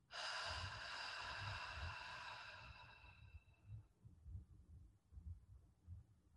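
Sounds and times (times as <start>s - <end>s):
deep slow inhale and exhale: 0.0s - 3.8s
faint soft rhythmic breathing with low pulses: 0.0s - 6.3s.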